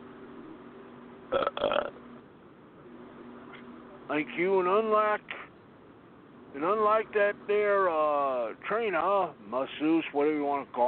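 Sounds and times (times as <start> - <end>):
loud drawn-out croaking belch: 1.3 - 2.0
speech: 4.1 - 5.4, 6.5 - 10.8.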